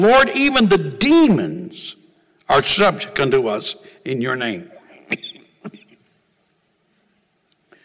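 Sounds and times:
speech: 0:00.0 - 0:05.8
short sharp throat-clearing coughs from a tickle in the throat: 0:04.9 - 0:06.0.

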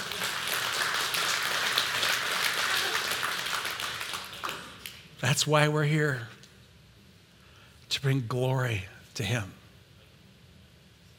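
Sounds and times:
crowd applauding: 0:00.0 - 0:05.0
speech: 0:05.2 - 0:06.4, 0:08.0 - 0:09.6.

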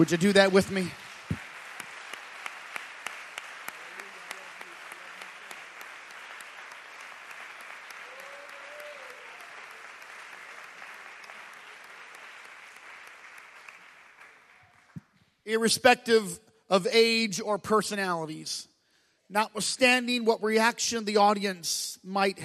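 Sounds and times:
speech: 0:00.0 - 0:01.4, 0:15.5 - 0:18.7, 0:19.3 - 0:22.4
large crowd applauding: 0:00.0 - 0:15.2.

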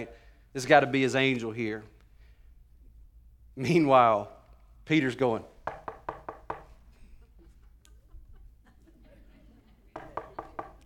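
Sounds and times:
speech: 0:00.0 - 0:02.0, 0:03.6 - 0:05.8
knocking on a door: 0:05.6 - 0:06.8, 0:10.0 - 0:10.8
laughter: 0:07.0 - 0:10.8.

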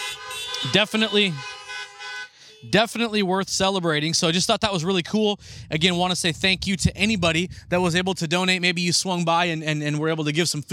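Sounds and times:
car horns honking: 0:00.0 - 0:03.4
speech: 0:00.6 - 0:01.5, 0:02.6 - 0:10.7.

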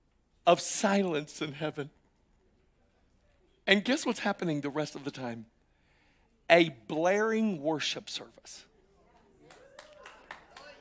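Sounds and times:
speech: 0:00.5 - 0:02.0, 0:03.7 - 0:05.6, 0:06.5 - 0:08.7
audience clapping: 0:09.4 - 0:10.7.

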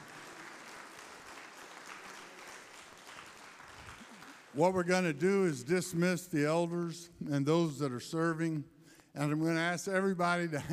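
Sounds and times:
church audience standing and clapping: 0:00.0 - 0:05.2
speech: 0:04.5 - 0:10.7.

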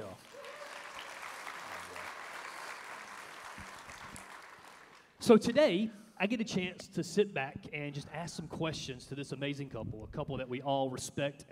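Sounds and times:
crowd applause welcoming a pastor: 0:00.0 - 0:05.2
cheering: 0:00.2 - 0:04.9
speech: 0:05.3 - 0:11.4.

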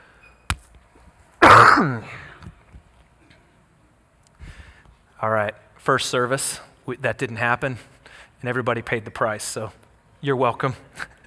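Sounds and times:
cough with throat clearing: 0:01.4 - 0:02.1
speech: 0:01.8 - 0:02.2, 0:05.2 - 0:11.1.

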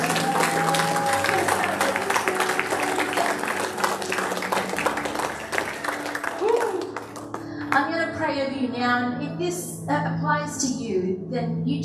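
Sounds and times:
audience applauding: 0:00.0 - 0:07.7
speech: 0:08.8 - 0:11.8.

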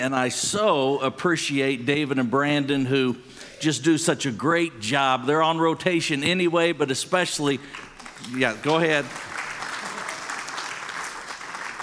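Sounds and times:
speech: 0:00.0 - 0:09.3
audience applauding: 0:07.7 - 0:11.8.

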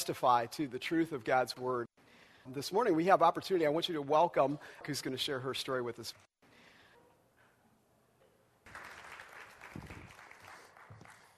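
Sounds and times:
speech: 0:00.0 - 0:06.3
audience applause from a room full of people: 0:08.7 - 0:11.3.

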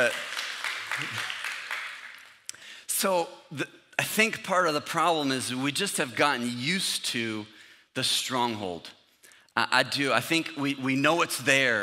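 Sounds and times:
audience applause from a crowd: 0:00.0 - 0:02.4
speech: 0:01.0 - 0:01.4, 0:03.0 - 0:09.0, 0:09.6 - 0:11.8.

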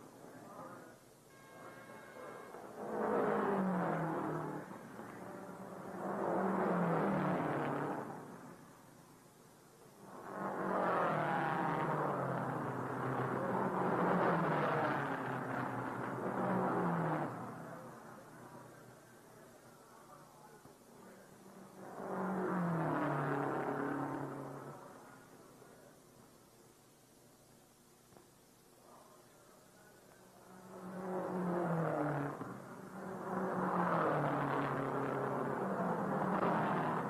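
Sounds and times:
race car engine revving during pit stop: 0:02.3 - 0:08.7, 0:10.0 - 0:19.0, 0:21.6 - 0:25.2, 0:30.5 - 0:37.0.

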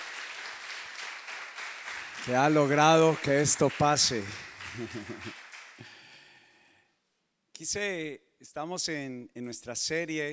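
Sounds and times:
crowd applauding: 0:00.0 - 0:06.2
speech: 0:02.2 - 0:05.4, 0:07.6 - 0:10.3
laughter: 0:04.6 - 0:05.4.

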